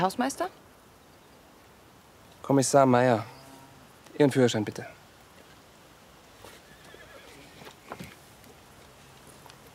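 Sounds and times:
speech: 0.0 - 0.6, 2.4 - 3.3, 4.2 - 5.0
faint hiss: 0.0 - 9.7
horse hoofbeats clip-clopping: 6.4 - 9.7
horse whinnying: 6.5 - 7.8.

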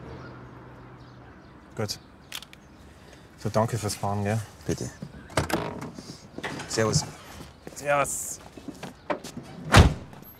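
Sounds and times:
speech: 1.8 - 2.1, 3.4 - 5.2, 6.7 - 7.2, 7.8 - 8.4
car door slamming shut with a heavy thud: 9.7 - 10.2.

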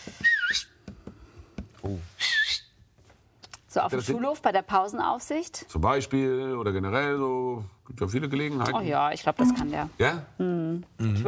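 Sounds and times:
shrill piercing two-finger whistles: 0.1 - 0.8
speech: 1.8 - 2.1, 3.8 - 11.2.

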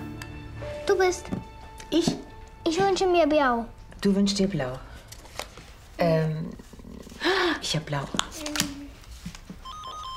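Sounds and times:
speech: 0.9 - 4.9, 6.0 - 6.6, 7.6 - 8.5
telephone ringing with electronic warbling beeps: 9.7 - 10.1.

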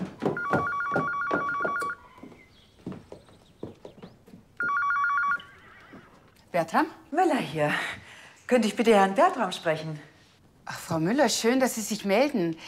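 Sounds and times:
hooves clip-clopping: 0.0 - 6.5
telephone ringing: 0.2 - 2.2, 4.6 - 6.2
speech: 6.6 - 10.1, 10.7 - 12.6.

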